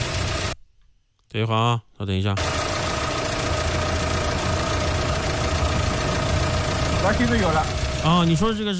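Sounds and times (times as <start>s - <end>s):
cold car engine idling with valve rattle: 0.0s - 0.6s, 2.4s - 8.7s
speech: 1.3s - 2.6s, 7.0s - 8.7s.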